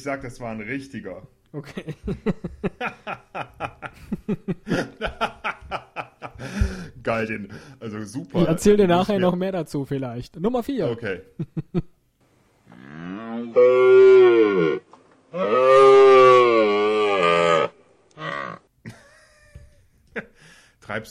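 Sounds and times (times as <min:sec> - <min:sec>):
speech: 0:00.0 - 0:05.3, 0:06.4 - 0:11.9, 0:13.6 - 0:16.1, 0:20.9 - 0:21.0
laughter: 0:01.6 - 0:06.9, 0:18.9 - 0:20.4
cow mooing: 0:12.7 - 0:18.7.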